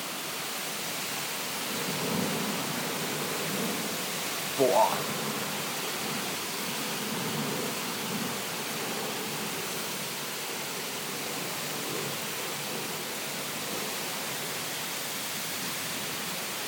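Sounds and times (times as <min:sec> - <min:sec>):
gusting wind: 0:00.0 - 0:16.6
heavy rain: 0:00.0 - 0:16.6
person exclaiming: 0:04.6 - 0:05.0
speech: 0:04.6 - 0:05.2.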